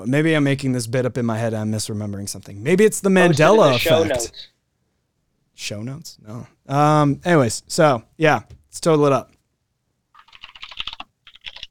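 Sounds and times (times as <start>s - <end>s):
speech: 0.0s - 4.5s, 5.6s - 9.4s
typing on a computer keyboard: 10.2s - 11.6s.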